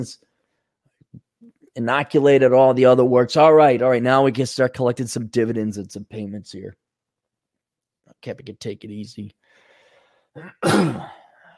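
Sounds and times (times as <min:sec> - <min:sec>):
speech: 0:00.0 - 0:00.3, 0:01.8 - 0:06.8, 0:08.2 - 0:09.4, 0:10.4 - 0:11.2
harsh cough into a microphone: 0:10.4 - 0:11.4.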